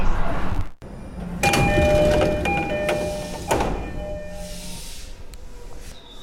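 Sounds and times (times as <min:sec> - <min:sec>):
commuter train idling with a steady low rumble: 0:00.8 - 0:05.8
ringing chime tones of train doors: 0:01.4 - 0:04.7.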